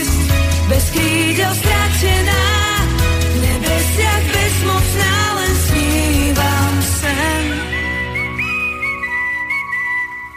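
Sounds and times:
full instrumental backing music: 0.0 - 10.3
speech: 1.4 - 2.5
group of people whistling a melody: 7.4 - 10.3.

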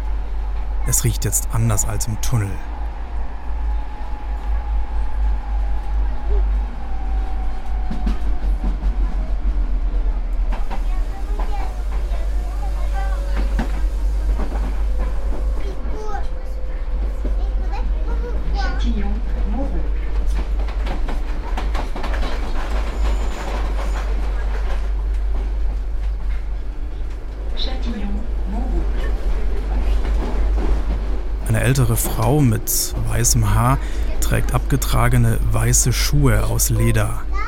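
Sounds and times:
metro train rumbling through a long left curve: 0.0 - 37.3
speech: 0.8 - 2.8, 32.4 - 37.3
metro train wheel squeal: 22.8 - 24.4.

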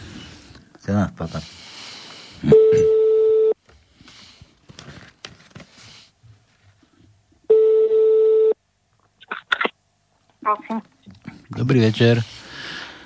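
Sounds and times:
speech: 0.8 - 1.6, 2.4 - 3.0, 11.7 - 12.4
phone ringback tone while placing a call: 2.5 - 3.6, 7.5 - 8.6.

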